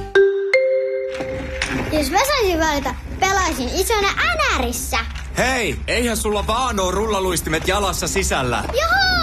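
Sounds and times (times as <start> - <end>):
doorbell chime: 0.1 - 1.9
speech: 2.0 - 9.1.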